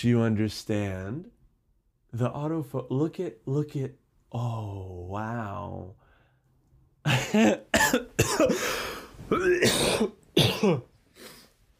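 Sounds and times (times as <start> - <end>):
speech: 0.0 - 1.4, 2.1 - 6.0, 7.1 - 10.9
harsh raspy coughing fit: 7.0 - 11.4.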